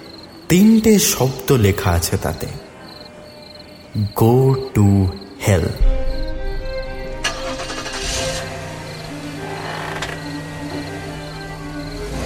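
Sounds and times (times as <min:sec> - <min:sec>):
speech: 0:00.5 - 0:02.6, 0:03.9 - 0:06.0
car engine cranking and starting: 0:06.6 - 0:12.2.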